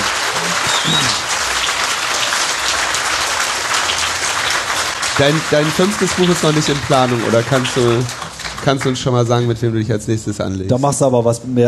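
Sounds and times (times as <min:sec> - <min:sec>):
applause from a sizeable audience: 0:00.0 - 0:09.6
speech: 0:05.2 - 0:11.6.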